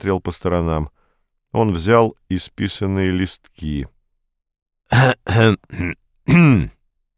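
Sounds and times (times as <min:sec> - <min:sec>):
speech: 0:00.0 - 0:04.0, 0:04.9 - 0:06.8
man clearing throat: 0:04.9 - 0:06.8.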